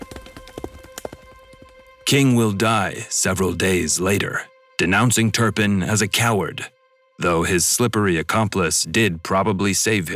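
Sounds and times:
horse hooves galloping on hard ground along a high street: 0.0 - 3.2
speech: 2.1 - 10.1.

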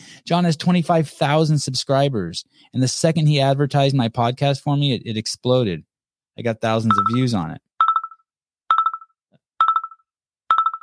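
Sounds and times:
speech: 0.3 - 7.7
incoming phone call ringtone with chiming electronic pulses: 6.9 - 10.8.

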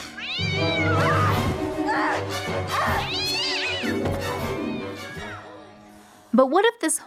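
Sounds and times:
cat yowling and caterwauling: 0.2 - 2.1, 2.7 - 5.6
speech: 6.4 - 7.0.

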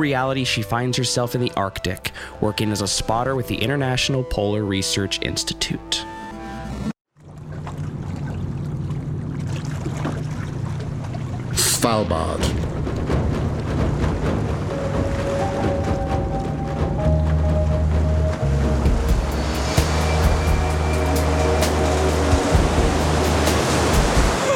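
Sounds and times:
speech: 0.0 - 6.2, 11.9 - 12.6
ocean water washing around a boat: 7.2 - 24.5
low droning hum: 7.3 - 24.4
faint tonal whines: 14.7 - 23.2.

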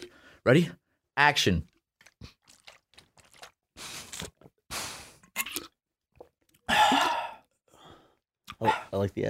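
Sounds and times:
speech: 0.4 - 2.4, 8.6 - 9.2
loud exaggerated slurping sips and gulps of water: 1.6 - 7.5.

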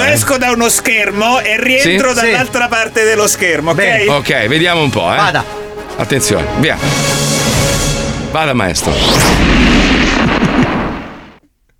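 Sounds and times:
speech: 0.1 - 7.3, 8.3 - 10.8
crackling gunfire burst sound effect: 8.8 - 11.4.

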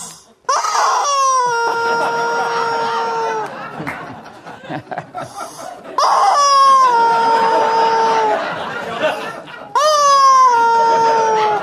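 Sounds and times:
rubber chicken toy squealing when squeezed: 0.5 - 3.4, 6.0 - 8.5, 9.8 - 11.6
people laughing: 1.0 - 11.6.

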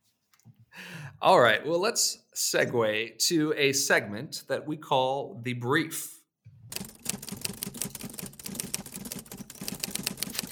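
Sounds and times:
speech: 1.2 - 6.2
old Underwood typewriter typing: 6.7 - 10.5.

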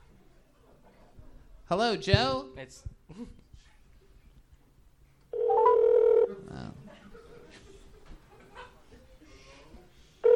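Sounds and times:
speech: 1.7 - 3.4
telephone ringing tone through a speakerphone: 5.4 - 6.4
laughter: 6.3 - 9.3.

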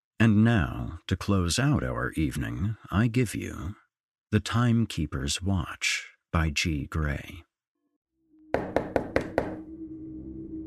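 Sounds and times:
speech: 0.2 - 7.5
low hum: 8.4 - 10.6
loud knocks on a front door: 8.6 - 9.6.

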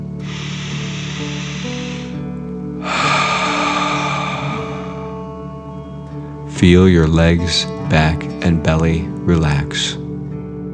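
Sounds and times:
slow deep breath through the nose in a relaxation exercise: 0.0 - 6.4
soft steady musical drone: 0.0 - 9.7
speech: 6.6 - 10.0.

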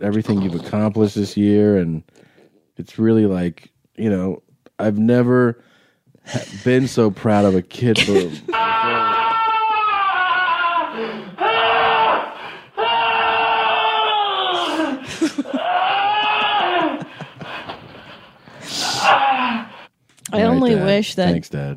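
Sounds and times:
speech: 0.0 - 9.1, 20.3 - 21.7
sharp breathy gasps: 2.1 - 2.6, 5.6 - 6.8
laughter: 6.3 - 9.6, 14.6 - 18.2
person screaming: 8.4 - 17.2, 18.8 - 19.7.

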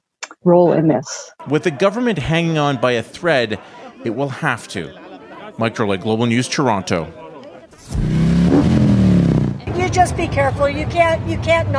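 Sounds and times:
speech: 0.4 - 5.0, 5.6 - 7.2, 9.9 - 11.7
laughter: 1.4 - 7.9
motorcycle engines revving at a rally: 7.8 - 11.7.

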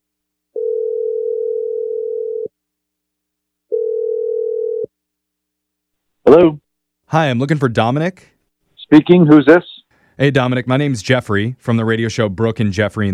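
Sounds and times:
phone dial tone: 0.5 - 2.5, 3.7 - 4.9
speech: 6.3 - 8.3, 8.9 - 13.1.

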